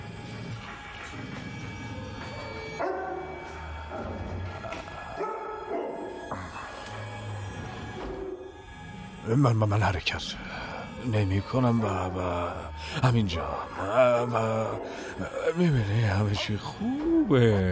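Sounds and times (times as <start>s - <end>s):
dog barking: 2.3s - 4.1s, 5.0s - 6.6s
speech: 9.3s - 17.7s.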